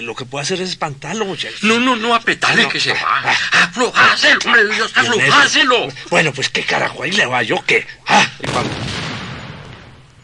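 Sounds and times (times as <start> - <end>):
speech: 0.0 - 9.0
laughter: 1.6 - 8.5
loud gunshot with long booming rumble: 8.4 - 10.2.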